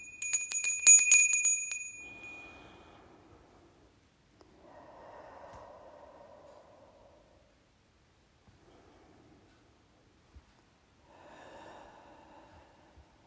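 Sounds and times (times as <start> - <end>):
small bell rung to open a meditation: 0.0 - 2.9
slow, soft breaths: 1.7 - 13.2.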